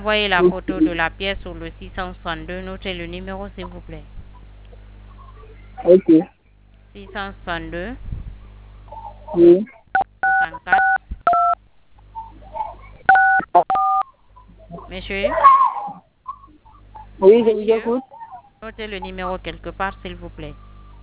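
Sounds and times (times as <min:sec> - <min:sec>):
speech: 0:00.0 - 0:04.2, 0:05.8 - 0:08.1, 0:09.3 - 0:09.8, 0:10.4 - 0:11.0, 0:14.9 - 0:15.7, 0:17.2 - 0:20.6
telephone keypad tones from touchscreen keys pressed during a call: 0:10.0 - 0:11.6, 0:13.1 - 0:14.1.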